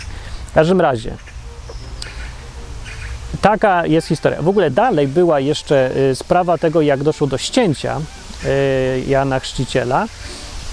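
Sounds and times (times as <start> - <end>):
steady low rumble: 0.0 - 8.8
speech: 0.5 - 1.3, 3.4 - 10.4
duck quacking: 1.2 - 9.0.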